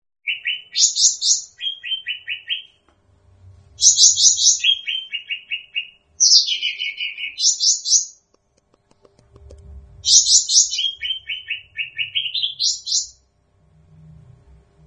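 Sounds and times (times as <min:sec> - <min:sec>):
bird song with quick repeated chirps and high trills: 0:00.2 - 0:02.8, 0:03.8 - 0:09.2, 0:10.0 - 0:13.3.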